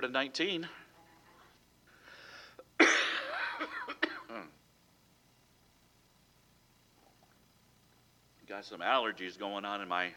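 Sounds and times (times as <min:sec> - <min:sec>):
speech: 0:00.0 - 0:00.8, 0:08.5 - 0:10.1
faint breathy lead-in: 0:01.9 - 0:02.7
harsh coughing: 0:02.6 - 0:04.6
rough gravelly throat clearing: 0:02.8 - 0:04.6.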